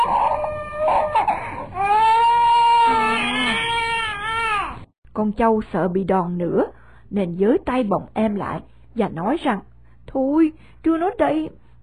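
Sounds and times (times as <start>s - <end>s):
small child crying out in a shrill tearful wail: 0.0s - 4.8s
speech: 5.2s - 11.6s.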